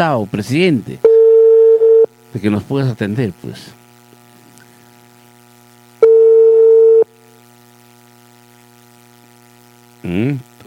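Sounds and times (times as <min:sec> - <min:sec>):
speech: 0:00.0 - 0:01.1, 0:02.3 - 0:03.8, 0:10.0 - 0:10.6
telephone tone during a call: 0:06.0 - 0:07.0.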